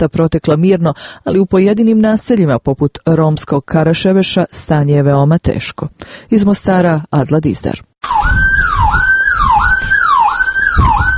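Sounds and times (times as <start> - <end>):
speech: 0.0 - 8.4
loud electronic building alarm wailing during a power outage: 8.0 - 11.1.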